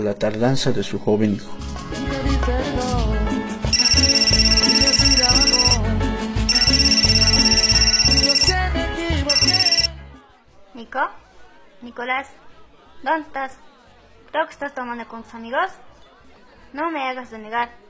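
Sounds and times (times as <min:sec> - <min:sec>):
speech: 0:00.0 - 0:03.2, 0:10.9 - 0:11.2, 0:11.8 - 0:12.4, 0:13.0 - 0:13.7, 0:14.3 - 0:15.9, 0:16.7 - 0:17.8
busy music with a steady beat: 0:01.6 - 0:10.2
loud bright phone ringtone for an incoming call: 0:03.7 - 0:05.9, 0:06.5 - 0:10.0.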